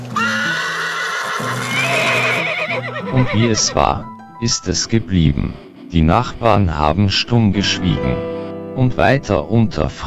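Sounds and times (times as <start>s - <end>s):
horse neighing: 0.0s - 4.0s
speech: 3.1s - 10.0s.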